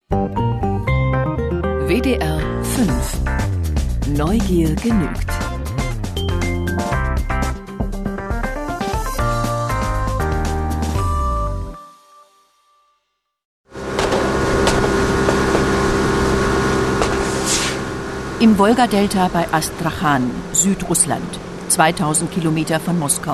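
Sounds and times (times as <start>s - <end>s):
music: 0.0s - 13.4s
speech: 1.9s - 3.5s, 4.1s - 5.4s, 18.4s - 23.3s
speedboat engines roaring through narrow river channels of the Volga delta: 13.8s - 23.3s.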